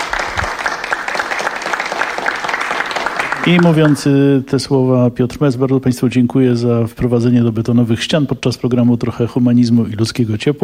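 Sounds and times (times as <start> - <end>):
live audience applauding: 0.0 - 4.2
speech: 3.4 - 10.6.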